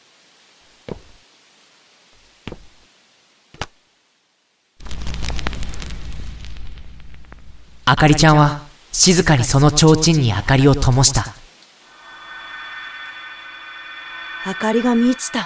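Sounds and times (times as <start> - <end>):
fireworks booming: 4.8 - 9.5
speech: 7.9 - 11.4, 14.6 - 15.4.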